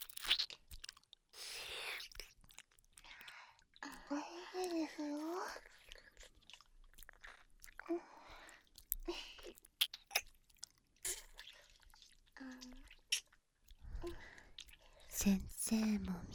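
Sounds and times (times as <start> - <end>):
wet licking and mouth sounds at an ear: 0.0 - 4.1, 5.2 - 15.1
breathing: 3.0 - 4.1, 7.9 - 9.4, 13.8 - 15.1
speech: 4.8 - 5.8, 7.9 - 8.1, 15.2 - 16.3.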